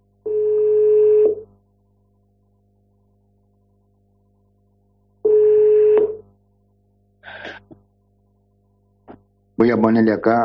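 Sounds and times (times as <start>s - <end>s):
telephone tone while placing a call: 0.2s - 1.5s, 5.2s - 6.2s
speech: 9.6s - 10.4s.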